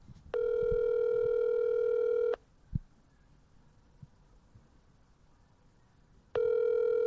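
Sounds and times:
outgoing call's ringback tone: 0:00.4 - 0:02.4, 0:06.4 - 0:07.0.

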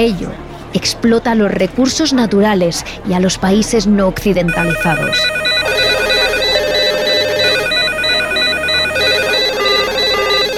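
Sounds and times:
speech: 0:00.0 - 0:05.8
telephones ringing in a police office: 0:04.5 - 0:10.5.

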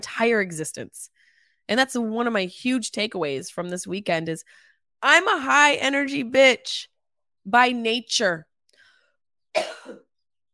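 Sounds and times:
speech: 0:00.1 - 0:08.5, 0:09.5 - 0:10.0
faint breathy sounds: 0:01.1 - 0:01.6, 0:04.4 - 0:04.8
harsh congested sinus cough: 0:09.6 - 0:10.1.

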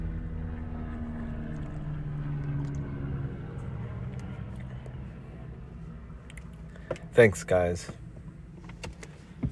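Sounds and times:
helicopter engine droning: 0:00.0 - 0:08.4
speech: 0:06.9 - 0:08.0.

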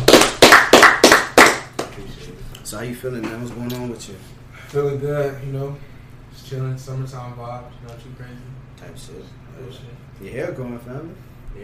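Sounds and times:
hands clapping: 0:00.0 - 0:02.0
speech: 0:02.7 - 0:11.6.

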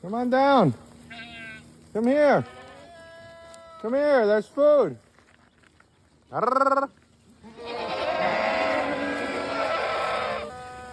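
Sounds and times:
speech: 0:00.0 - 0:00.9, 0:02.0 - 0:02.6, 0:03.8 - 0:05.0, 0:06.3 - 0:07.0
goats bleating: 0:01.0 - 0:04.1, 0:06.3 - 0:10.9.

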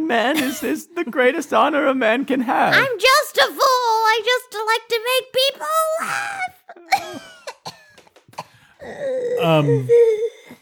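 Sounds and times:
speech: 0:00.1 - 0:07.2, 0:08.8 - 0:10.4
person coughing: 0:06.9 - 0:09.0
strained wheezing vocal groan: 0:08.8 - 0:10.6.

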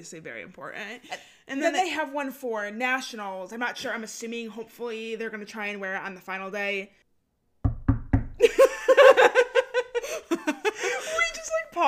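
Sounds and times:
speech: 0:00.0 - 0:07.0, 0:08.4 - 0:08.8
knocking on wood: 0:07.6 - 0:08.4
people laughing rhythmically: 0:08.4 - 0:11.4.

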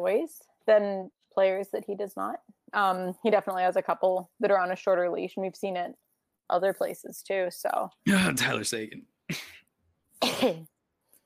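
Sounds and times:
speech: 0:00.0 - 0:09.5, 0:10.2 - 0:10.7
loud rasping cough: 0:10.2 - 0:10.7.

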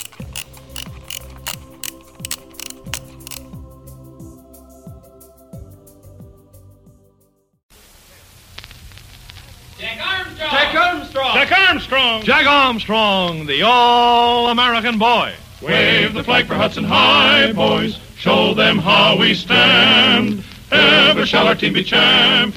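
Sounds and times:
clock gears ratcheting while being wound backward: 0:00.0 - 0:03.5
speech: 0:09.9 - 0:22.5.

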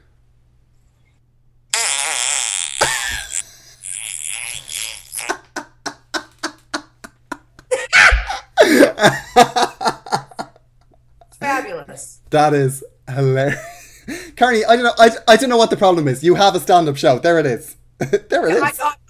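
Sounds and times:
recorded fart sound effect played on a phone: 0:01.7 - 0:05.6
laughter: 0:05.4 - 0:10.6
speech: 0:09.0 - 0:09.2, 0:12.3 - 0:13.7, 0:14.4 - 0:19.0.

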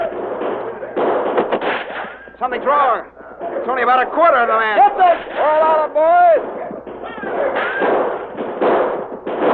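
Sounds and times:
gunfire in a western shootout: 0:00.0 - 0:02.4, 0:06.4 - 0:09.5
thuds: 0:00.0 - 0:02.6, 0:06.2 - 0:09.5
speech: 0:02.4 - 0:07.8.

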